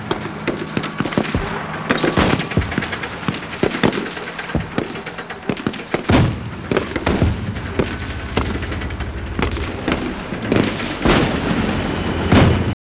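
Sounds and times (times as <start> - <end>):
battle ambience mix: 0.0 - 12.8.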